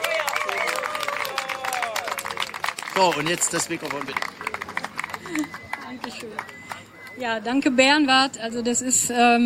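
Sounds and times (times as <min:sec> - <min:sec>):
audience applause at an event for a backstage helper being thanked: 0:00.0 - 0:07.2
speech: 0:03.0 - 0:04.4, 0:05.3 - 0:06.6, 0:07.2 - 0:09.4.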